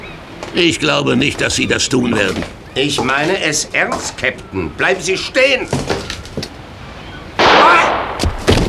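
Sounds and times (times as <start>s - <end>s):
speech: 0.5s - 6.5s
loud gunshot shooting a revolver out of a person's hand: 7.4s - 8.6s
smaller sharp knocks: 7.9s - 8.6s.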